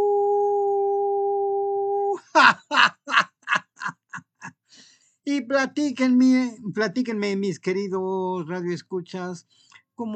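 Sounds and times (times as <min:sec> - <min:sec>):
person imitating an energetic howl with yipping bursts: 0:00.0 - 0:02.3
speech: 0:02.4 - 0:02.8, 0:05.3 - 0:10.1.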